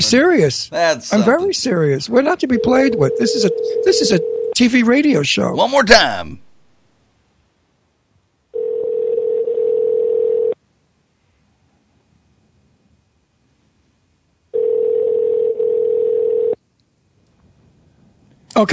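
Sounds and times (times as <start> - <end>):
speech: 0.0 - 6.4, 18.6 - 18.7
telephone line ringing out unanswered: 2.5 - 4.6, 8.5 - 10.6, 14.5 - 16.6.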